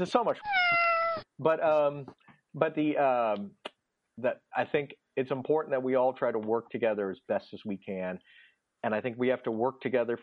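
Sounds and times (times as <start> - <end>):
speech: 0.0 - 10.2
cats meowing: 0.4 - 1.3.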